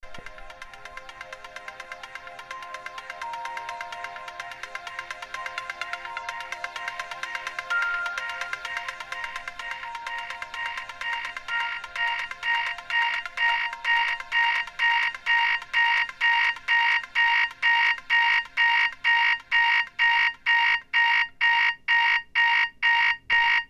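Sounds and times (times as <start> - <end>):
accelerating alarm: 0.4 - 23.6.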